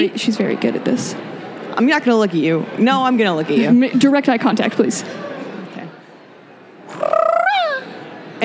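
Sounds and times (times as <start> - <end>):
speech: 0.0 - 5.3
person imitating a lemur call with nasal wail: 6.9 - 7.9.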